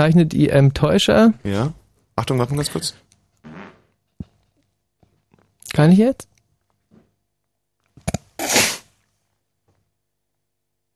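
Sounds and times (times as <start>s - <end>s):
speech: 0.0s - 3.0s, 5.7s - 6.3s
new sneakers creaking: 3.4s - 4.4s.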